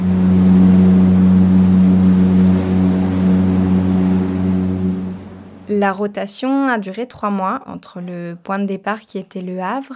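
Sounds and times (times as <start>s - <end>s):
container ship engine drone onboard: 0.0s - 6.0s
speech: 5.8s - 9.9s.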